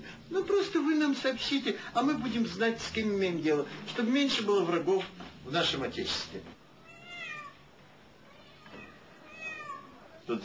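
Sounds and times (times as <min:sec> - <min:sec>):
faint hiss: 0:00.0 - 0:10.4
speech: 0:00.3 - 0:06.6
cat meowing: 0:06.8 - 0:10.2.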